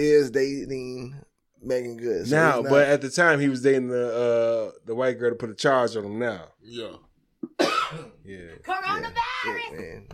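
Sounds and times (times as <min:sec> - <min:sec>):
speech: 0:00.0 - 0:10.1
person coughing: 0:07.4 - 0:08.2.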